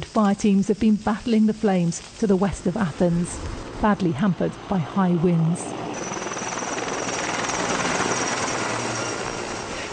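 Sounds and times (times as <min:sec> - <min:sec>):
speech: 0:00.2 - 0:06.0
helicopter rotor and engine roaring overhead: 0:02.7 - 0:09.9.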